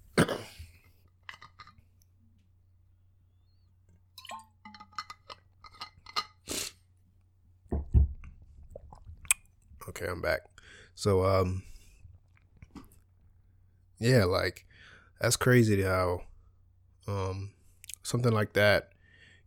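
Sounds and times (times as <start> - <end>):
faint steady hum: 0.0 - 19.4
wet mouth clicks, swallows and gulps: 8.6 - 9.5
person sipping water: 8.7 - 9.4
speech: 10.0 - 11.7, 14.0 - 16.3, 17.1 - 18.9.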